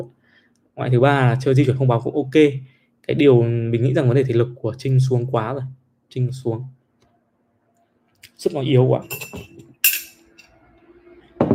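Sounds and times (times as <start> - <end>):
speech: 0.0 - 0.2, 0.8 - 6.8, 8.4 - 9.6
glass clinking as it is set down: 9.0 - 10.6.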